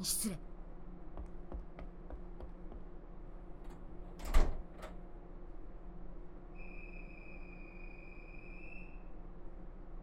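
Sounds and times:
speech: 0:00.0 - 0:00.5
low hum: 0:00.0 - 0:10.0
sliding door of a departing vehicle shutting: 0:04.2 - 0:05.0.

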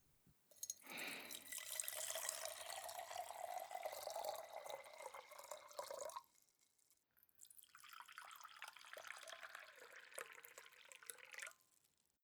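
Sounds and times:
hot water poured to warm a teapot and cups: 0:00.6 - 0:06.2, 0:07.6 - 0:11.5.

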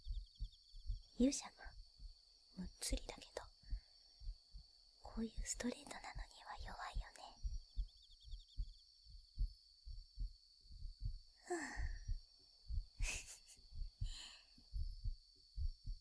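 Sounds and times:
heartbeat thumping in lub-dub pairs: 0:00.0 - 0:15.9
speech: 0:01.2 - 0:01.8, 0:02.6 - 0:03.4, 0:05.2 - 0:06.0
breathy noises: 0:11.5 - 0:12.1.

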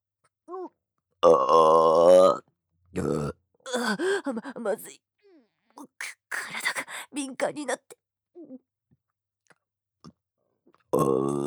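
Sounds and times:
loud drawn-out crude burp: 0:01.2 - 0:03.8, 0:11.0 - 0:11.4.

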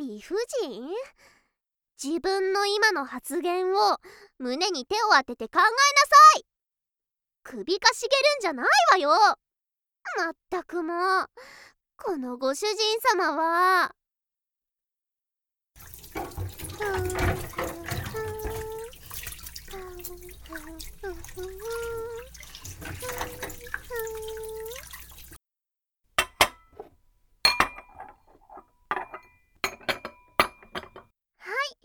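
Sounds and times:
speech: 0:00.2 - 0:01.4, 0:02.0 - 0:06.5, 0:07.4 - 0:09.4, 0:10.0 - 0:14.0
dishes clattering as they are set down: 0:15.8 - 0:19.4, 0:22.4 - 0:24.3, 0:26.2 - 0:31.1
water running from a tap: 0:15.8 - 0:25.4
plates and cutlery clinking while washed: 0:16.0 - 0:18.7, 0:27.5 - 0:31.0.

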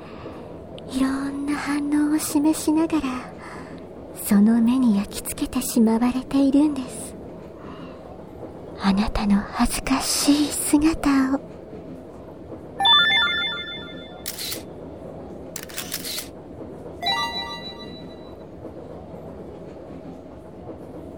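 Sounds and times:
speech: 0:00.9 - 0:03.4, 0:04.3 - 0:07.0, 0:08.8 - 0:11.5
smartphone camera shutter sounds: 0:14.2 - 0:14.6, 0:15.6 - 0:16.3
short electronic chime tones: 0:17.0 - 0:18.4.

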